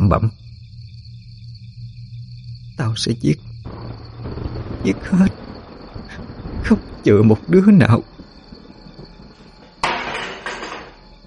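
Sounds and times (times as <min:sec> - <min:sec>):
speech: 0:00.1 - 0:00.4, 0:02.8 - 0:03.5, 0:04.8 - 0:05.4, 0:06.6 - 0:08.1
table laden with rice dishes kicked over, crockery crashing: 0:09.8 - 0:11.0.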